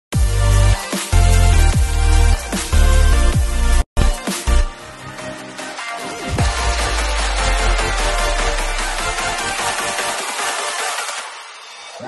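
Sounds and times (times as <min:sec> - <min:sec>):
bass with automation: 0:00.1 - 0:05.4, 0:06.2 - 0:10.2.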